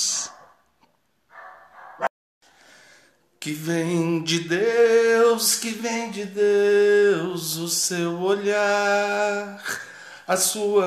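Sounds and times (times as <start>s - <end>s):
female dog barking sharply: 0.2s - 0.6s, 1.3s - 2.1s
speech: 3.4s - 10.8s.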